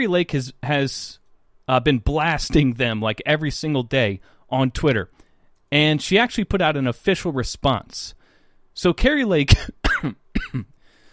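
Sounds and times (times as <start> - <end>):
speech: 0.0 - 8.2, 8.8 - 10.7
harsh throaty coughs: 9.5 - 10.8.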